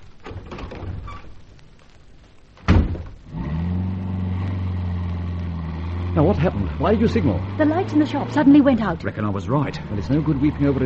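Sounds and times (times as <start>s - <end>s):
car door slamming: 2.6s - 3.2s
car engine starting and idling: 3.3s - 10.8s
speech: 6.2s - 10.8s.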